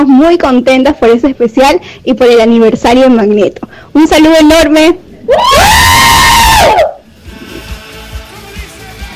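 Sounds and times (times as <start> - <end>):
speech: 0.0 - 6.0, 6.6 - 7.0
group of girls in Peru screaming through a phone line: 5.3 - 7.0.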